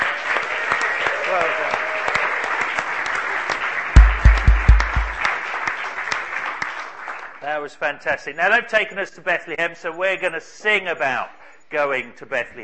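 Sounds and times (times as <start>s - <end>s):
congregation applause: 0.0s - 7.6s
speech: 1.3s - 1.8s, 7.6s - 12.6s
heavy low thumps: 4.0s - 5.2s.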